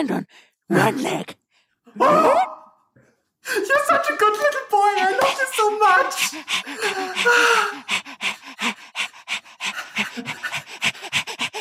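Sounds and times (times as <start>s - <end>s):
speech: 0.0s - 2.6s, 3.5s - 10.8s
dog panting rapidly: 3.9s - 11.5s.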